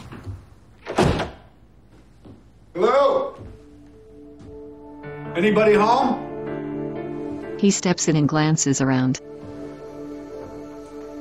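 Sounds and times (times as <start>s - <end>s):
house door thump: 0.1s - 1.6s
speech: 2.8s - 3.5s, 5.4s - 6.2s, 7.6s - 9.3s.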